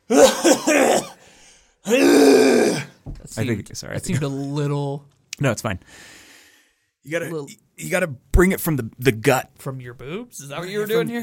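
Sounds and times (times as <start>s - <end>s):
person clearing throat: 0.1s - 1.2s
speech: 3.4s - 6.2s, 7.0s - 11.2s.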